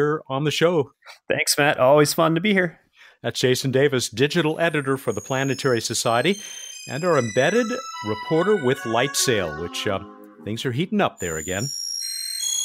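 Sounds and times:
speech: 0.0 - 11.8
sonified tones of the variable binary star Gamma Cassiopeiae's brightness: 4.5 - 12.5.

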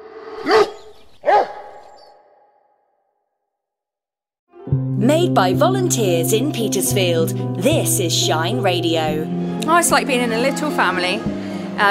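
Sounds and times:
beagle barking: 0.4 - 2.6
speech: 5.0 - 11.8.

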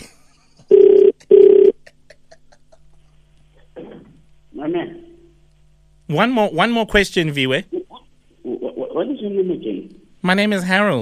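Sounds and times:
phone ringback tone: 0.7 - 1.7
speech: 6.1 - 7.8, 9.0 - 11.0.

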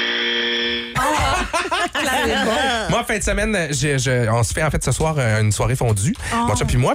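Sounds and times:
electronic quiz buzzer: 0.0 - 1.0
laughter: 1.0 - 3.1
speech: 1.5 - 6.9.

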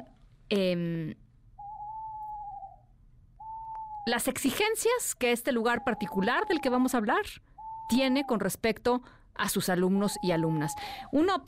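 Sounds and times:
speech: 0.0 - 1.2, 4.0 - 11.4
owl hooting: 1.6 - 8.8, 9.7 - 11.3.

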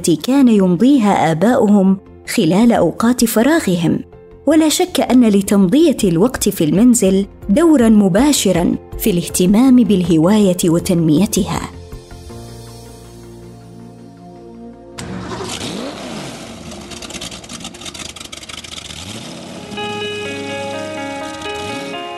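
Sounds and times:
speech: 0.0 - 11.8
car engine cranking, revving and idling: 15.0 - 22.0.

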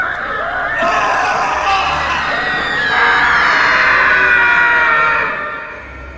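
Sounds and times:
several people screaming in agony: 0.8 - 5.3.

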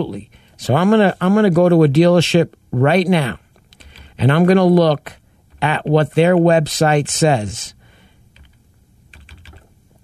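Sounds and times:
speech: 0.0 - 3.4, 4.2 - 7.8
computer keyboard keystrokes: 8.4 - 9.7.

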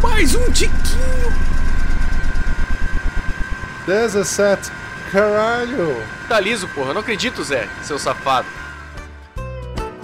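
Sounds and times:
rocket engine valve vibrating as alcohol fuel runs low: 0.0 - 3.7
alcohol-fuelled rocket engine running on test: 0.0 - 9.0
speech: 0.2 - 1.6, 3.9 - 8.6.

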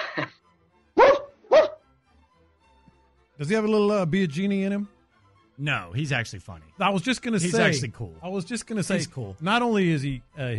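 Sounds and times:
dog barking: 1.0 - 1.8
speech: 3.4 - 5.0, 5.6 - 10.5.

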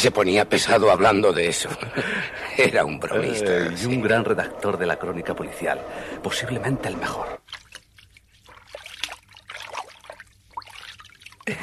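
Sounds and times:
speech: 0.0 - 7.5, 11.5 - 11.6
water trickling in a bath: 7.4 - 11.6.

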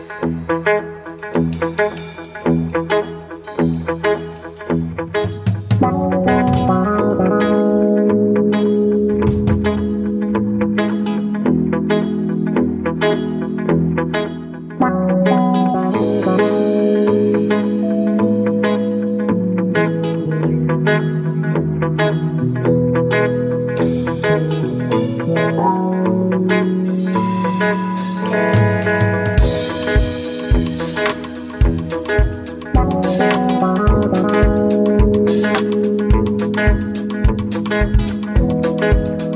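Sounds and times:
electronic music with synth tones and rhythmic hits: 0.0 - 39.3.

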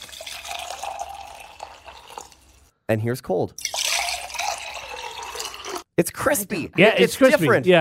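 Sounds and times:
boiling hot water pouring into a container: 0.0 - 2.7, 3.6 - 5.9
speech: 2.9 - 3.8, 6.0 - 7.7.

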